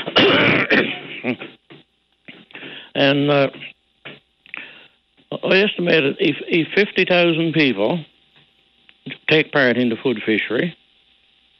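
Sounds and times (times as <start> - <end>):
person clearing throat: 0.0 - 1.6
speech: 3.0 - 3.7, 5.4 - 8.1, 9.3 - 10.8.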